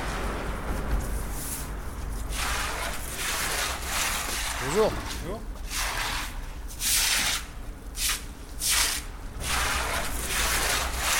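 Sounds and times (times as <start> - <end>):
broom sweeping a wet street: 0.0 - 11.1
speech: 4.6 - 5.5.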